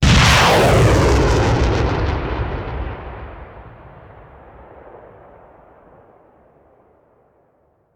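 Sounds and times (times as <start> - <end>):
artillery missile launcher: 0.0 - 5.1.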